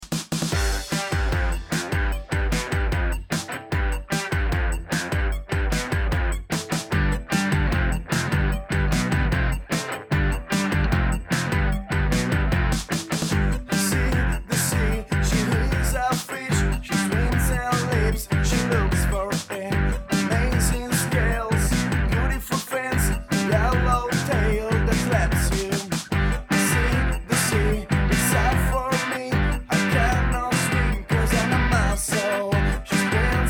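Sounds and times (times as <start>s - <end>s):
electropop music: 0.0s - 33.4s.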